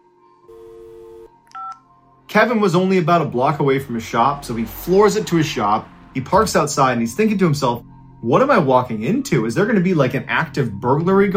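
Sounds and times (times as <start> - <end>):
electronic phone tones signalling a dropped call: 1.0 - 1.8
speech: 2.4 - 11.3.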